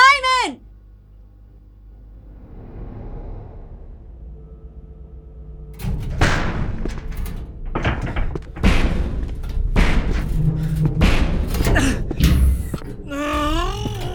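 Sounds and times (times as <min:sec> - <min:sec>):
low droning groan: 0:02.1 - 0:14.1
heavy banging on a titanium alloy metal door: 0:05.8 - 0:14.1.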